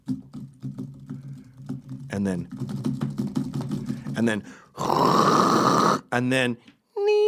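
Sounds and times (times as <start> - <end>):
fast typing on a computer keyboard while emailing: 0.0 - 5.3
speech: 2.1 - 2.8, 4.2 - 6.7.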